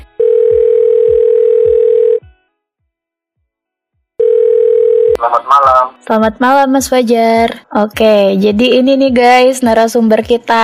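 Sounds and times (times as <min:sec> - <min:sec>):
telephone ringback tone: 0:00.2 - 0:02.2, 0:04.2 - 0:05.2
speech: 0:05.2 - 0:10.6.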